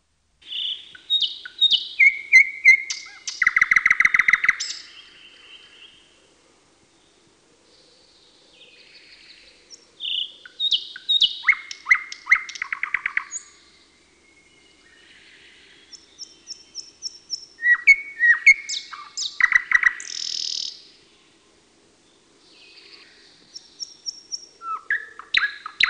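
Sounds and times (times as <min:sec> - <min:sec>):
thrush nightingale singing: 0:00.4 - 0:06.2, 0:06.9 - 0:21.4, 0:22.1 - 0:25.8.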